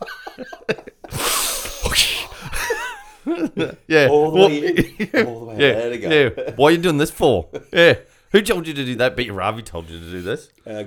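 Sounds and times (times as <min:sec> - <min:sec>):
people chuckling and laughing: 0:00.0 - 0:08.2
forceful deep breath out in Wim Hof style: 0:01.1 - 0:02.6
short vocal sounds: 0:01.2 - 0:02.4
speech: 0:03.3 - 0:10.8.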